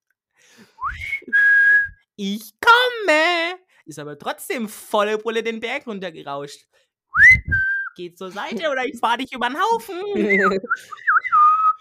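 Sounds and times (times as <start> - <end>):
man whistling while riding through a tunnel: 0.8 - 2.1, 7.1 - 8.0, 10.2 - 11.7
speech: 2.2 - 11.1
laughter: 9.9 - 11.6.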